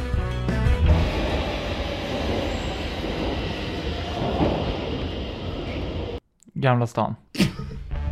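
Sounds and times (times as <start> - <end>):
Stockholm metro train at Zinkensdamm station entering a tunnel: 0.0 - 6.2
speech: 6.6 - 7.5.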